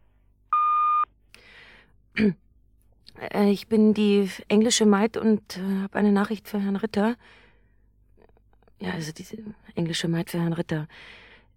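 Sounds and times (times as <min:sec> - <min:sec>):
hotel reception answering machine beep: 0:00.5 - 0:01.0
speech: 0:02.2 - 0:02.4, 0:03.2 - 0:07.4, 0:08.8 - 0:11.2.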